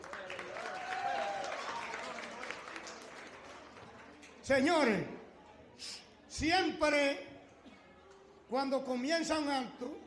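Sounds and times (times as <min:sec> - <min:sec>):
audience cheering: 0:00.0 - 0:03.2
audience applauding with many hands clapping: 0:00.0 - 0:04.4
speech: 0:04.5 - 0:05.2, 0:05.8 - 0:07.3, 0:08.5 - 0:10.0.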